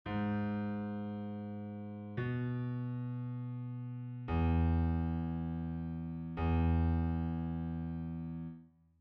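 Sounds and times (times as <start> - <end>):
bass: 0.1 - 8.6.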